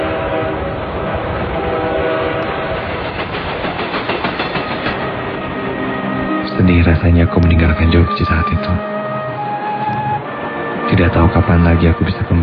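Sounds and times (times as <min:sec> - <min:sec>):
train rumbling as it pulls away from the station: 0:00.0 - 0:12.4
wheels clattering on rails: 0:02.4 - 0:05.2
speech: 0:06.8 - 0:09.0, 0:11.0 - 0:12.4.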